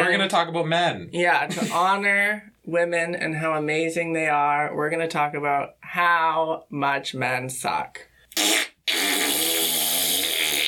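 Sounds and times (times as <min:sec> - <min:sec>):
speech: 0:00.2 - 0:08.7
buzzy rasping fart sound effect: 0:08.4 - 0:10.6.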